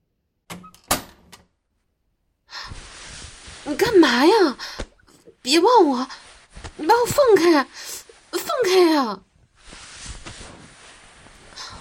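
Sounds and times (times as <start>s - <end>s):
door latch and handle clicking: 0.5s - 1.5s
speech: 3.7s - 4.8s, 5.5s - 6.2s, 6.8s - 7.8s, 8.6s - 9.2s.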